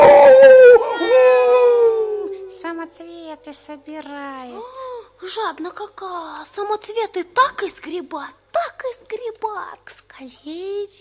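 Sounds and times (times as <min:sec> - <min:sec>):
she-wolf howling: 0:00.0 - 0:02.9
speech: 0:03.5 - 0:11.0.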